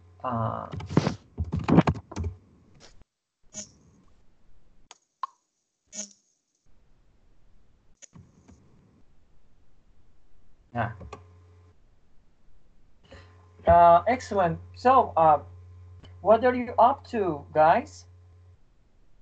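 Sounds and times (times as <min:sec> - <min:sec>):
speech: 0:00.2 - 0:01.2, 0:13.8 - 0:15.5, 0:16.2 - 0:18.1
rapid keyboard clacking and key taps: 0:00.6 - 0:02.4, 0:10.9 - 0:11.2.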